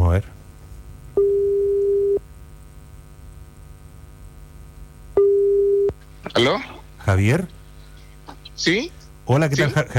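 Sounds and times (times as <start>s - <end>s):
faint hum on the telephone line: 0.0s - 9.9s
speech: 0.2s - 0.4s, 6.4s - 7.6s, 8.6s - 9.9s
telephone line tone beeps while a call is being dialed: 1.2s - 2.2s, 5.2s - 5.9s.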